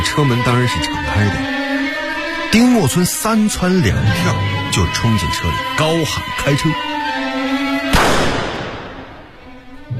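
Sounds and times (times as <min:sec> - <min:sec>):
low sustained musical tone: 0:00.0 - 0:07.9
speech: 0:00.2 - 0:01.6, 0:02.5 - 0:07.2
gunshot fired at a man fleeing into a waiting car: 0:07.9 - 0:09.2.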